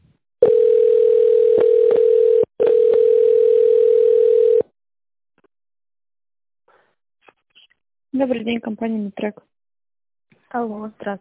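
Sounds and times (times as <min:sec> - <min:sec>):
telephone ringing tone while waiting on hold: 0:00.4 - 0:04.7
speech: 0:08.2 - 0:09.6, 0:10.5 - 0:11.1.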